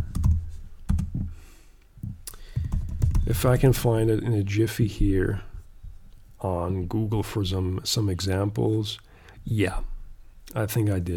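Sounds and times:
fingers typing on a laptop keyboard: 0:00.0 - 0:01.2, 0:02.6 - 0:03.3
speech: 0:03.3 - 0:05.5, 0:06.4 - 0:09.9, 0:10.5 - 0:11.1.

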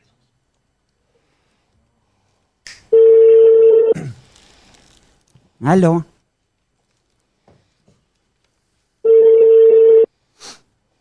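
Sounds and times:
telephone ringback tone while a call is being placed: 0:03.0 - 0:04.0, 0:09.0 - 0:10.1
speech: 0:05.6 - 0:06.1.

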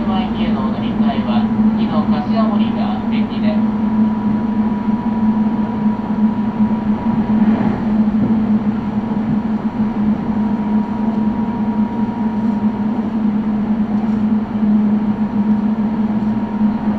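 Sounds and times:
local train low drone: 0:00.0 - 0:16.9
thin steady whine of local train: 0:00.0 - 0:16.9
brief rushing swell: 0:06.7 - 0:10.0.

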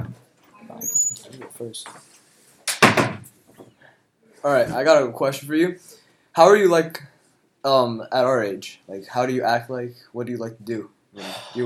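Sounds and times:
speech: 0:01.6 - 0:02.1, 0:04.4 - 0:11.6
door swinging shut with creak and latch: 0:02.7 - 0:03.3.

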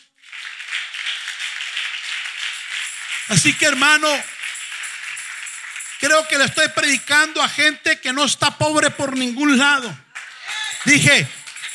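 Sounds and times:
audience applauding: 0:00.0 - 0:07.3, 0:10.1 - 0:11.7
speech: 0:03.3 - 0:04.4, 0:06.0 - 0:10.0, 0:10.8 - 0:11.4.

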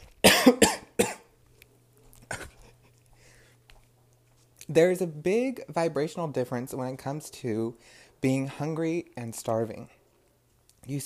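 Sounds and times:
low steady hum: 0:00.0 - 0:11.0
person coughing harshly: 0:00.2 - 0:01.3, 0:02.2 - 0:02.8
speech: 0:00.5 - 0:00.7, 0:04.7 - 0:10.0, 0:10.9 - 0:11.0.

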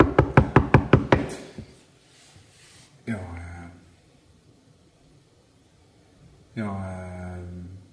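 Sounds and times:
firm solid knocks on a door: 0:00.0 - 0:01.4.

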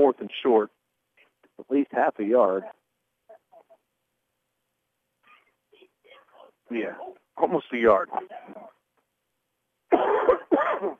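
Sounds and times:
speech: 0:00.0 - 0:00.8, 0:01.6 - 0:02.8, 0:06.7 - 0:08.8, 0:09.9 - 0:10.9
sportscaster clearing his throat during a football game: 0:09.9 - 0:10.9
sportscaster coughing during a football game: 0:09.9 - 0:10.9.

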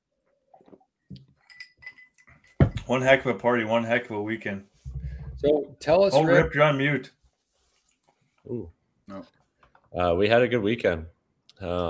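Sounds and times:
glasses clinking in a toast: 0:01.1 - 0:03.0
speech: 0:02.9 - 0:04.7, 0:05.4 - 0:07.2, 0:08.5 - 0:11.8.

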